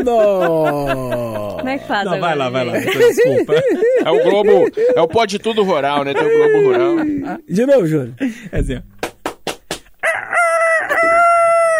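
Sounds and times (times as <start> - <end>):
laughter: 0.0 - 7.5, 10.6 - 11.7
speech: 0.0 - 8.9
carijó rooster crowing loudly: 10.0 - 11.7.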